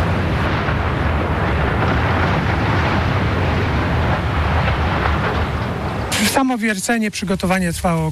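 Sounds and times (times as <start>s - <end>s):
rumbling roar of collapsing mine shaft tower and debris after dynamite demolition: 0.0s - 6.6s
speech: 6.4s - 8.0s.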